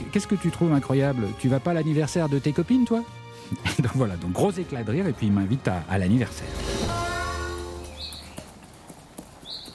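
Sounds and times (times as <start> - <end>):
speech: 0.1 - 6.7
horse hooves clip-clopping: 7.8 - 9.7.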